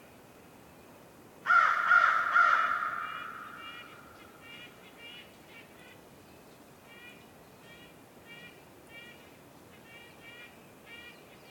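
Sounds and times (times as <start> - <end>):
crow cawing with echo on a winter forest morning: 1.5 - 4.8.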